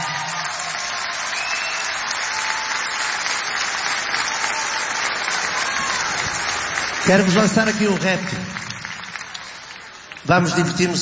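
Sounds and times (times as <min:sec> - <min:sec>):
large crowd applauding: 0:00.0 - 0:11.0
speech: 0:07.1 - 0:08.6, 0:10.3 - 0:11.0.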